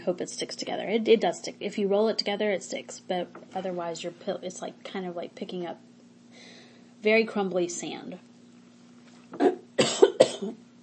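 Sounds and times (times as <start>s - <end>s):
speech: 0.0s - 8.3s, 9.3s - 9.6s, 10.4s - 10.6s
person coughing harshly in a coughing fit: 9.4s - 10.6s.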